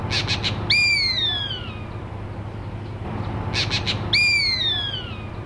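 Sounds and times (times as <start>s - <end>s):
gray hawk call: 0.1s - 1.9s, 3.5s - 5.3s.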